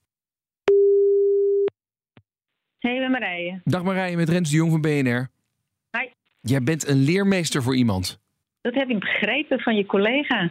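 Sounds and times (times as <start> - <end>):
steady mid-pitched telephone tone while a call is placed: 0.7 - 1.7
speech: 2.8 - 5.4, 6.0 - 10.4.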